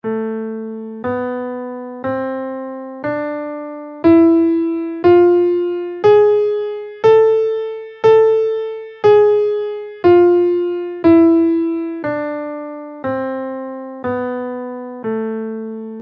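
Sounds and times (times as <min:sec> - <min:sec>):
guitar playing an A harmonic minor scale: 0:01.0 - 0:15.0.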